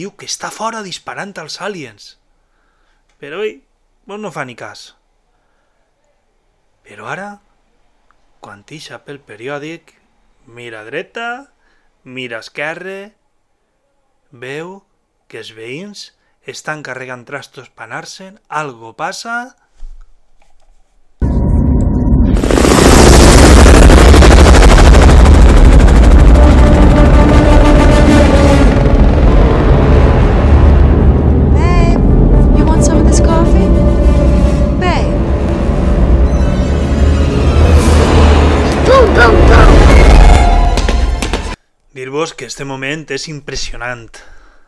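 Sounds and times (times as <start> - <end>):
speech: 0.0 - 2.2, 3.2 - 5.0, 6.9 - 7.5, 8.4 - 13.2, 14.3 - 19.6, 42.2 - 44.4
helicopter rumbling: 21.2 - 41.6.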